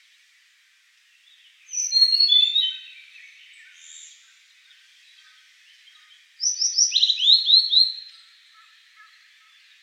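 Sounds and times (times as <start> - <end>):
blue-and-white flycatcher singing whistled notes: 1.7 - 2.9, 6.4 - 8.1.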